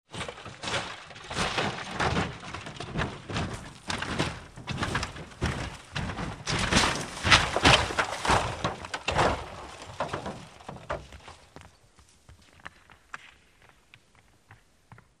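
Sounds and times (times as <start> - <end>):
vehicle falling down: 0.1 - 11.5.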